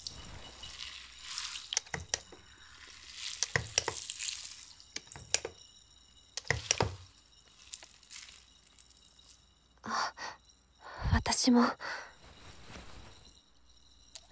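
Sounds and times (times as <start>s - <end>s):
wet squishes of bubbles being stirred: 0.0s - 5.5s, 6.4s - 9.4s
crackling foam being worked up: 0.0s - 5.6s, 6.2s - 9.6s
speech: 11.4s - 12.0s.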